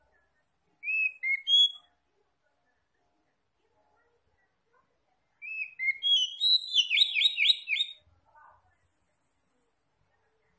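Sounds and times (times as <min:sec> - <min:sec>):
oriental magpie-robin whistling clear notes: 0:00.8 - 0:01.8, 0:05.4 - 0:08.0.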